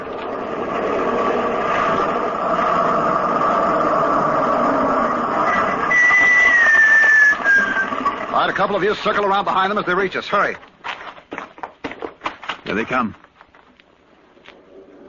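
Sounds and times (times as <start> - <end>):
thin high whine sliding downward: 0.0 - 10.2
truck engine rumbling: 0.0 - 12.9
speech: 8.4 - 10.7, 12.7 - 13.2.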